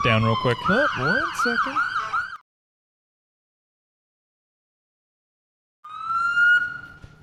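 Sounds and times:
speech: 0.0s - 1.9s
ambulance siren: 0.0s - 2.4s, 5.8s - 7.2s.

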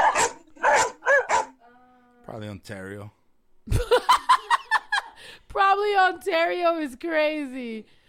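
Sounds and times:
dog barking: 0.0s - 1.6s
speech: 2.3s - 4.2s, 5.5s - 8.0s
laughter: 3.7s - 5.2s.

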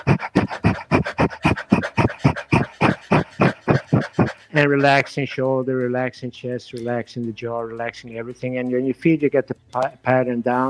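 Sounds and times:
person panting rapidly like a dog as a breathing exercise: 0.0s - 5.1s
speech: 4.6s - 10.6s.

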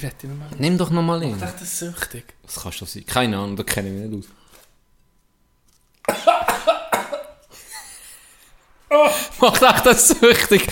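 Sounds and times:
speech: 0.0s - 4.4s, 8.9s - 10.6s
person coughing: 6.0s - 7.4s.

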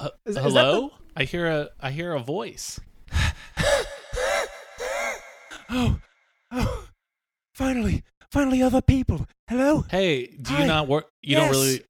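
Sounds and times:
speech: 0.0s - 3.7s, 5.7s - 6.8s, 7.6s - 11.8s
person breathing heavily out of breath after running: 3.1s - 6.9s.

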